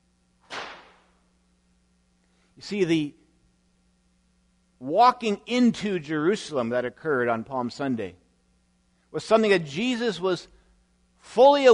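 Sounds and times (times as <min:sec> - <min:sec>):
faint steady low hum: 0:00.0 - 0:11.7
whip crack: 0:00.4 - 0:01.1
speech: 0:02.6 - 0:03.2, 0:04.8 - 0:08.2, 0:09.1 - 0:10.6, 0:11.2 - 0:11.7.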